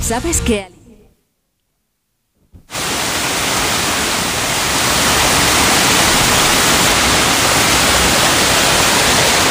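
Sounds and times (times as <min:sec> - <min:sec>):
speech: 0:00.1 - 0:00.8
small stream flowing over rocks: 0:02.7 - 0:09.4.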